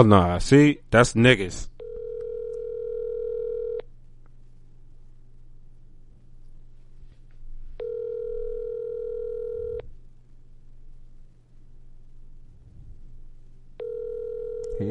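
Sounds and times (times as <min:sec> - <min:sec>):
speech: 0:00.0 - 0:01.7
low constant hum: 0:00.0 - 0:14.8
phone call ringback tones: 0:01.8 - 0:03.8, 0:07.8 - 0:09.8, 0:13.8 - 0:14.8.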